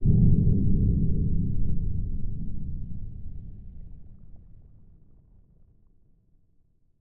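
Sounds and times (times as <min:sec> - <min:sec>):
heavy low-end stinger horror atmosphere effect: 0:00.0 - 0:04.9.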